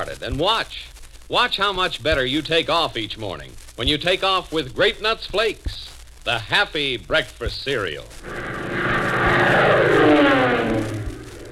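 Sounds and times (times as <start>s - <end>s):
speech: 0.1s - 8.6s
aircraft engines of a squadron of dive bombers droning: 8.2s - 11.5s.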